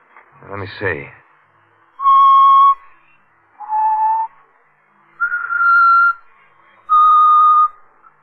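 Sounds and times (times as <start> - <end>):
speech: 0.5 - 1.2
person whistling a slow four-note tune: 2.0 - 2.9, 3.6 - 4.4, 5.2 - 6.3, 6.9 - 7.8.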